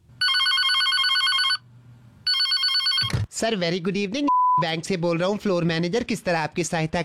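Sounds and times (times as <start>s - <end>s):
telephone at a bank ringing with electronic trilling: 0.2s - 1.6s, 2.2s - 3.3s
speech: 3.4s - 7.0s.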